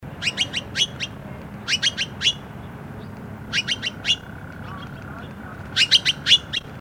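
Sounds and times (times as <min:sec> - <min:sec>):
Formosan magpie calling: 0:00.0 - 0:06.7.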